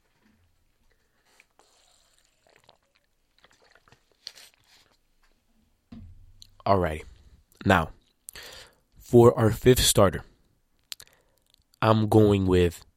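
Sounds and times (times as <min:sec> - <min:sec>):
soft gulps and swallows: 0:01.4 - 0:05.0
liquid sloshing in a bottle: 0:02.2 - 0:05.1
speech: 0:06.7 - 0:08.0, 0:09.1 - 0:10.3, 0:11.8 - 0:12.9.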